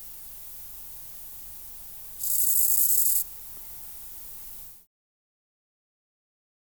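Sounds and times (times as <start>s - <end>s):
Chorthippus grasshopper rasping stridulation: 0.0s - 4.8s
faint background hiss: 0.0s - 4.9s.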